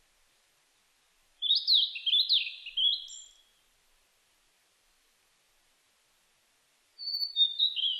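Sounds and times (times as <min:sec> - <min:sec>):
Blue-and-white flycatcher singing downslurred and wavering whistles: 0:01.4 - 0:03.5, 0:07.0 - 0:07.9.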